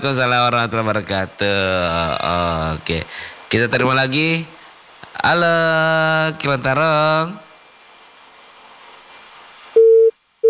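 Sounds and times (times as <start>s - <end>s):
speech: 0.0s - 4.6s, 5.2s - 7.4s
phone line hiss after a call disconnects: 0.0s - 10.4s
phone busy tone after a call disconnects: 9.8s - 10.4s.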